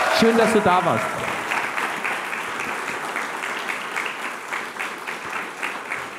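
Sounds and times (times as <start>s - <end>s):
live audience applause: 0.0s - 6.1s
speech: 0.2s - 1.2s.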